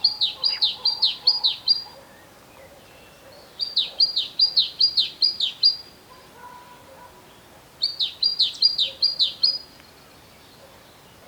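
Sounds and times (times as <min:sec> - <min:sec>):
great tit Parus major singing high ringing two-note phrases: 0:00.0 - 0:05.9, 0:07.8 - 0:09.7.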